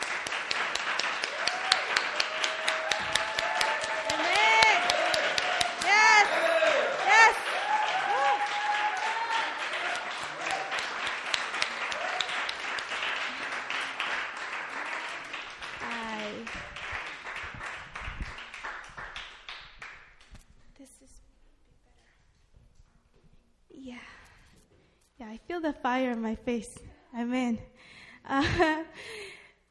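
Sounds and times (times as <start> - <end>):
congregation applauding: 0.0 - 20.4
scattered cheers and whoops: 1.2 - 11.1, 11.8 - 12.6
speech: 26.2 - 27.7, 28.3 - 28.8.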